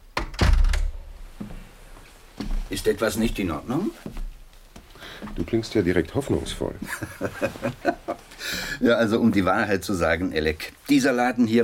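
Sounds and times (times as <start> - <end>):
office door being closed: 0.1 - 1.1
speech: 2.7 - 4.2, 5.3 - 11.6
laughter: 6.8 - 8.9.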